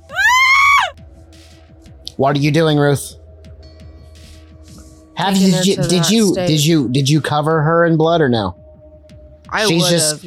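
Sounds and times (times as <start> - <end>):
girl screaming as fire engulfs her at a wooden stake: 0.0 - 1.0
speech: 2.2 - 3.2, 5.2 - 8.6, 9.5 - 10.2.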